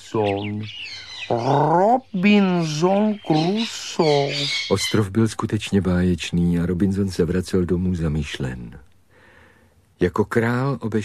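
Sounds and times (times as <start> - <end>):
parrot squawking: 0.0 - 5.1
speech: 0.1 - 8.9, 10.0 - 11.0.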